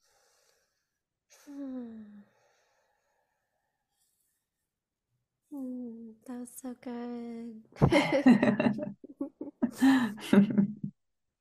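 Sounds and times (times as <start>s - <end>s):
faint breathy sounds: 0.0s - 4.8s
speech: 6.4s - 10.8s
laughter: 7.8s - 10.9s.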